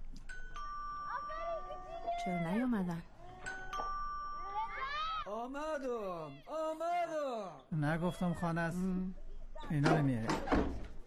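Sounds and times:
electronic house doorbell chiming: 0.3s - 5.2s
speech: 2.2s - 3.1s, 5.3s - 10.8s.

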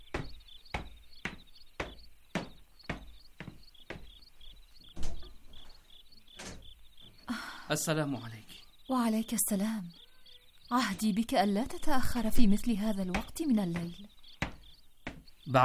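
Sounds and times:
knocking on a door at night: 0.1s - 4.2s, 12.8s - 15.4s
speech: 7.7s - 10.0s, 10.7s - 14.2s, 15.5s - 15.6s.

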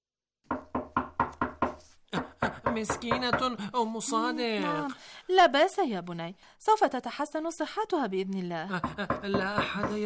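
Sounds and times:
knocking on a wooden door: 0.5s - 3.6s, 8.8s - 10.0s
speech: 2.8s - 10.0s.

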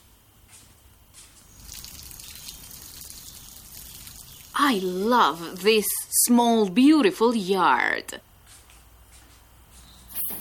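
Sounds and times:
water spraying onto plants and ground in a small yard: 1.4s - 6.2s
speech: 4.6s - 8.3s.

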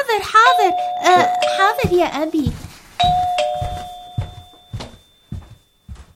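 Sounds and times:
speech: 0.2s - 3.3s
doorbell ding with lingering tone: 0.4s - 2.1s, 3.0s - 5.4s
doorbell electronic chime tune: 0.5s - 1.8s.

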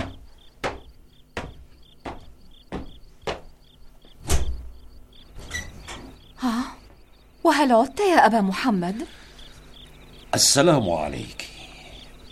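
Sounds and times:
sharp wooden clunks: 0.0s - 4.7s
crickets chirping softly: 0.0s - 12.3s
door opening with a heavier rumbling thud: 4.2s - 6.2s
speech: 7.5s - 9.2s, 10.3s - 11.5s.

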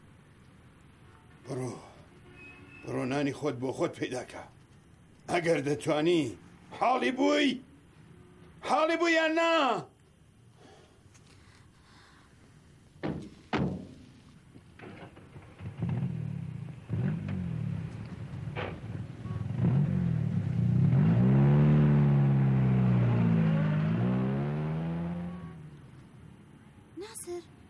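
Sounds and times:
speech: 1.5s - 1.9s, 2.8s - 4.6s, 5.3s - 7.7s, 8.6s - 9.9s
dull thuds: 13.0s - 16.3s
car engine revving and driving off: 15.3s - 26.0s.

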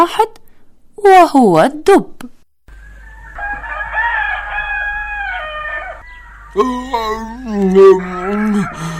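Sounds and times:
speech: 0.0s - 0.4s, 1.0s - 2.3s, 6.6s - 8.9s
rooster crowing: 2.7s - 8.9s.

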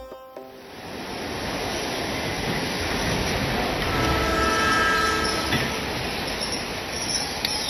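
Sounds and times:
train wheels rumbling on rails arriving at a station: 1.0s - 7.6s
brief horn-like train tone: 3.4s - 6.2s
high metallic train brake squeals: 3.5s - 7.6s.

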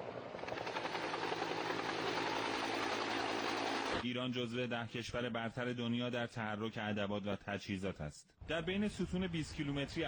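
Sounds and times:
helicopter rotor thumping during a ground forces military exercise in Iran: 0.0s - 4.0s
speech: 4.0s - 10.0s.

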